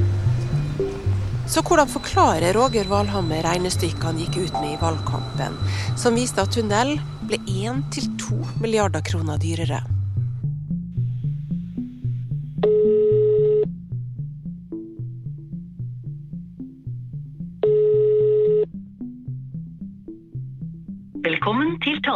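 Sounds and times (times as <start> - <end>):
soft rhythmic music bed: 0.0 - 22.1
speech: 1.5 - 9.9
phone call ringback tones: 1.6 - 8.8.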